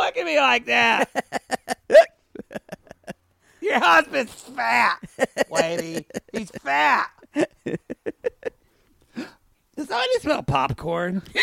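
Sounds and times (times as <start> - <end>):
speech: 0.2 - 2.1, 3.7 - 7.8, 9.9 - 11.4
laughter: 0.7 - 8.6
person hiccuping: 1.9 - 2.2.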